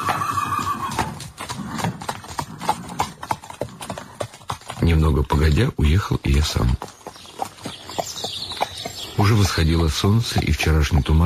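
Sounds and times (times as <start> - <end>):
horse neighing: 0.0 - 4.2
horse hooves clip-clopping on a hard surface: 0.0 - 11.2
speech: 4.9 - 7.0, 9.2 - 11.2.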